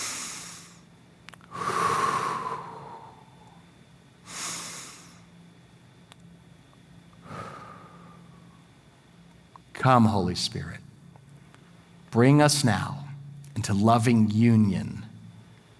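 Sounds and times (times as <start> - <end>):
slow deep breathing during a guided breathing exercise: 0.0 - 5.3, 7.2 - 8.7
speech: 9.8 - 10.8, 12.2 - 13.0, 13.6 - 15.0.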